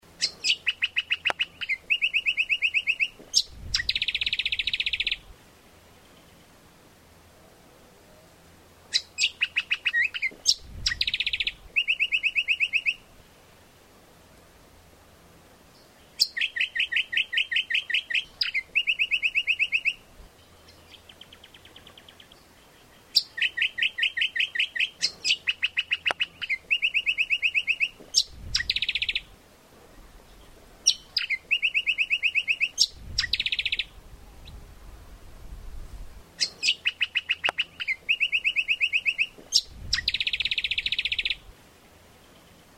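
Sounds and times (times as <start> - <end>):
Lichmera indistincta calling: 0.0 - 5.3, 8.9 - 13.1, 15.7 - 29.4, 30.2 - 34.6, 36.3 - 41.5.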